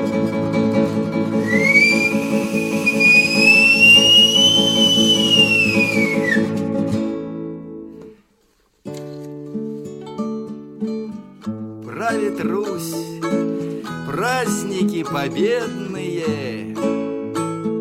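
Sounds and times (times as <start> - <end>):
steady instrumental music: 0.0 - 17.7
loud piercing heroic whistle: 1.4 - 6.6.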